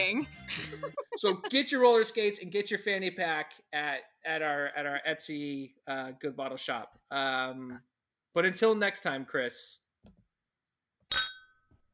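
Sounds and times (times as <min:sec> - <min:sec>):
speech: 0:00.0 - 0:10.2
laughter: 0:00.5 - 0:02.1
glasses clinking in a toast: 0:11.1 - 0:11.6.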